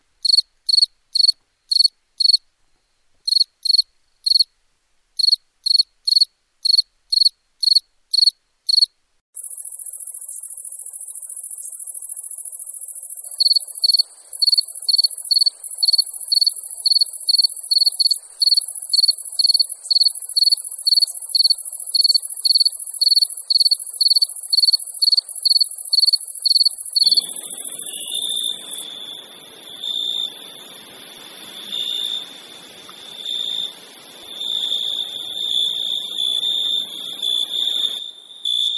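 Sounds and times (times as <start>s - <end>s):
crickets chirping: 0.2s - 2.4s, 5.2s - 38.7s.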